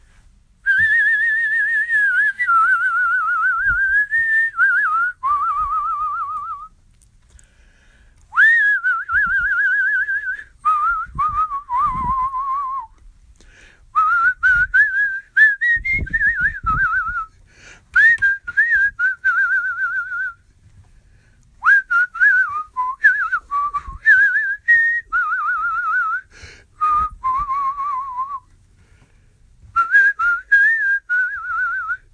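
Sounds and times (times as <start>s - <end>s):
soft breaths: 0.0s - 0.6s, 7.0s - 8.4s, 13.2s - 14.0s, 17.3s - 18.0s, 20.4s - 21.6s, 26.2s - 26.8s, 28.5s - 29.8s
person whistling a slow wavering song melody: 0.6s - 6.7s, 8.3s - 13.0s, 14.0s - 17.3s, 17.9s - 20.4s, 21.6s - 28.5s, 29.7s - 32.1s.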